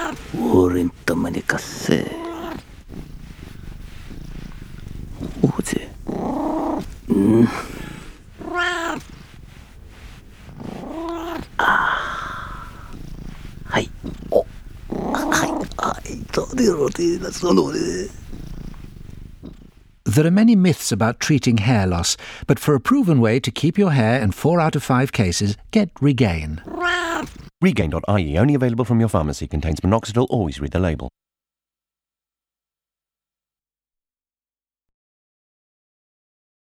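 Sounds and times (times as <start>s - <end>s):
cat growling and yowling: 0.0s - 1.0s, 1.6s - 19.7s, 26.6s - 27.5s
speech: 0.3s - 2.3s, 17.0s - 18.2s, 20.2s - 31.2s.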